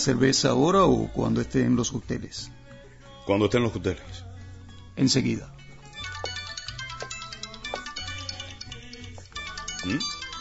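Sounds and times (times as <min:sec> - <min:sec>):
speech: 0:00.0 - 0:02.6, 0:03.2 - 0:04.3, 0:05.0 - 0:05.6, 0:09.8 - 0:10.2
mobile phone looping musical ringtone over a low bass pulse: 0:05.9 - 0:10.4.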